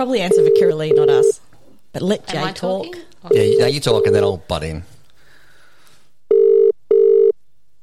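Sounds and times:
speech: 0.0s - 1.4s, 2.0s - 4.9s
electronic ringback tones of a phone call: 0.3s - 1.4s, 3.3s - 4.3s, 6.3s - 7.4s.

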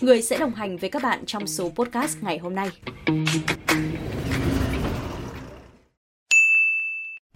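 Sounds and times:
speech: 0.0s - 4.5s
rumbling traffic and vehicle noise: 3.4s - 6.0s
phone text message notification ding for a bank SMS: 6.3s - 7.2s.

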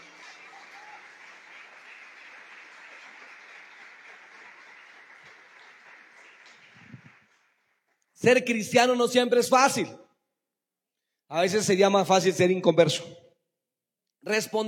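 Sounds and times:
audience applauding: 0.0s - 8.0s
speech: 8.2s - 10.0s, 11.3s - 13.2s, 14.2s - 14.6s.

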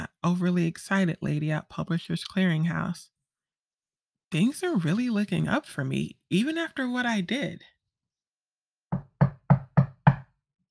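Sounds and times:
speech: 0.2s - 3.1s, 4.3s - 7.7s
firm knocking on a door: 8.9s - 10.4s.

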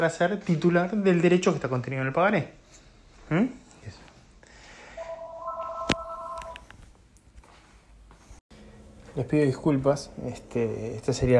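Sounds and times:
speech: 0.0s - 2.6s, 3.3s - 4.0s, 9.2s - 11.3s
phone electronic ringtone of an incoming call: 4.9s - 6.6s.

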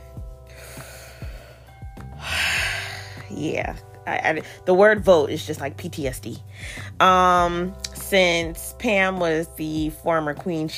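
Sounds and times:
deep breath: 0.5s - 3.2s
speech: 3.3s - 10.7s.

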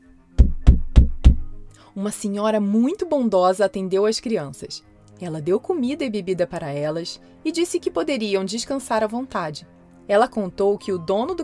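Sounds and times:
firm knocks on a wooden door: 0.4s - 1.7s
speech: 2.0s - 11.4s.

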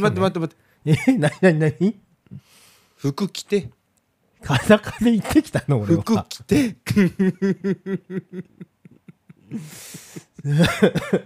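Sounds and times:
speech: 0.0s - 3.8s, 4.4s - 8.7s, 9.5s - 11.2s
person coughing throaty repeated coughs: 6.5s - 7.1s, 9.5s - 11.2s
laughter: 6.8s - 11.2s.

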